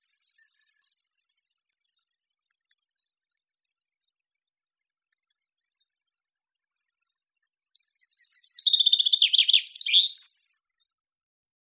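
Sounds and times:
common chaffinch Fringilla coelebs singing: 7.6s - 10.2s.

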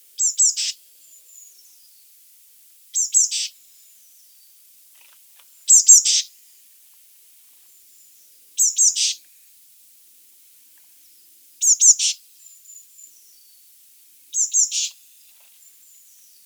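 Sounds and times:
Eurasian blue tit Cyanistes caeruleus calling: 0.2s - 0.8s, 3.0s - 3.6s, 5.7s - 6.3s, 8.6s - 9.2s, 11.6s - 12.2s, 14.3s - 15.0s.

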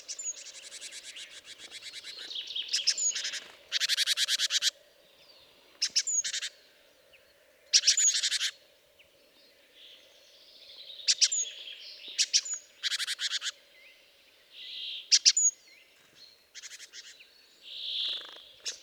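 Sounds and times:
great tit Parus major harsh buzzy chattering calls: 0.0s - 4.8s, 5.8s - 6.6s, 7.7s - 8.6s, 10.7s - 13.6s, 16.4s - 18.8s.

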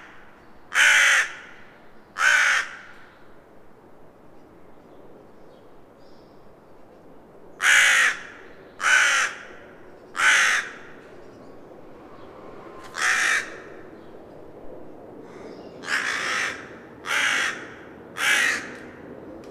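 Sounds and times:
Carrion crow calling in rough grating caws: 0.0s - 3.0s, 7.6s - 11.0s, 12.9s - 13.9s, 15.2s - 19.0s.

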